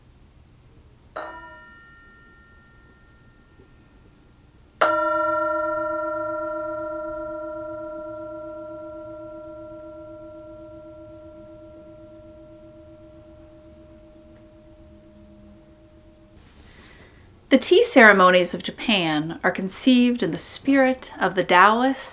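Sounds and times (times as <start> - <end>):
meditation bell ringing: 1.2 - 16.4
speech: 17.5 - 22.1.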